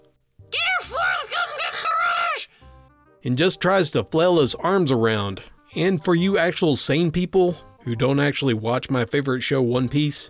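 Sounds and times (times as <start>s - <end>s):
voice mimicking a shrill piercing screech: 0.6s - 2.5s
speech: 3.2s - 10.2s.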